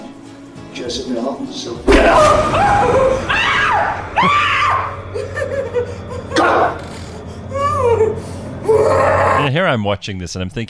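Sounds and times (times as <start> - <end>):
speech: 0.8 - 6.8, 8.8 - 10.6
woman screaming during an exorcism: 2.1 - 5.1, 7.5 - 9.5.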